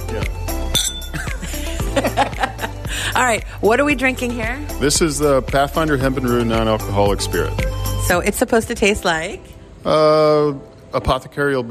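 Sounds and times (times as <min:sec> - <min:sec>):
glasses clinking in a toast with non-alcoholic spirit drinks: 0:00.6 - 0:01.4
laughter: 0:01.1 - 0:03.1
speech: 0:03.2 - 0:11.6.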